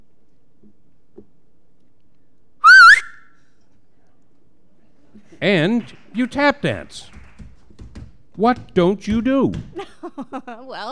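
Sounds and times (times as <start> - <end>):
person whistling: 2.6 - 3.4
speech: 5.4 - 7.1, 8.4 - 10.9.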